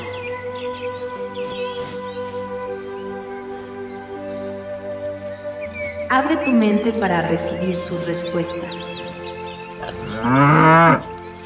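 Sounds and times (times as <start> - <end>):
speech: 6.1 - 9.1, 10.2 - 11.2
single cow mooing: 9.8 - 11.2.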